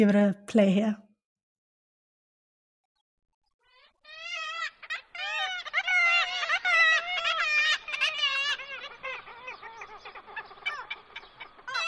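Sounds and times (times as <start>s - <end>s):
speech: 0.0s - 1.0s
black-legged kittiwakes calling in a breeding colony at Dunbar Harbour Scotland: 3.6s - 11.8s.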